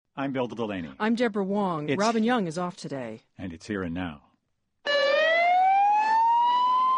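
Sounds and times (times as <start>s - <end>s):
speech: 0.2s - 5.0s
emergency vehicle siren wailing in Madrid after bomb explosions on trains: 4.9s - 6.9s.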